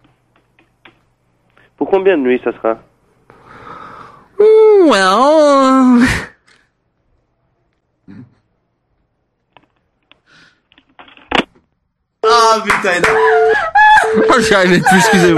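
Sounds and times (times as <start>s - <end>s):
speech: 1.8s - 2.9s, 4.9s - 6.2s, 12.6s - 13.4s, 14.2s - 15.3s
man taking a big deep breath with a voiced exhale: 3.3s - 4.4s
laughter: 13.0s - 15.3s.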